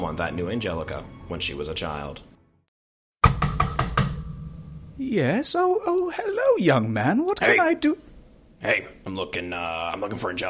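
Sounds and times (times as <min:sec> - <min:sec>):
speech: 0:00.1 - 0:02.3, 0:05.0 - 0:10.4
knocking on a wooden door: 0:03.2 - 0:04.2.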